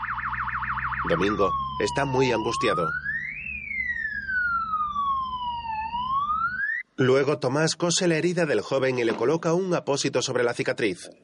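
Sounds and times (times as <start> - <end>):
low steady rumble: 0.0 - 6.6
ambulance siren wailing: 0.0 - 6.8
speech: 1.0 - 3.0, 7.0 - 11.2.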